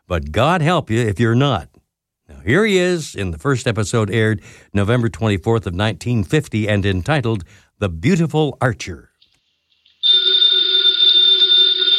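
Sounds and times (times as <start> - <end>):
speech: 0.1 - 1.7, 2.4 - 9.1
telephone bell ringing: 10.0 - 11.9.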